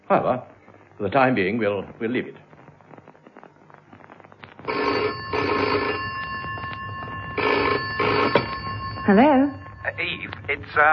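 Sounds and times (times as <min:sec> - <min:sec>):
speech: 0:00.1 - 0:02.5, 0:09.1 - 0:10.9
telephone ringing with an electric trill: 0:04.6 - 0:10.9.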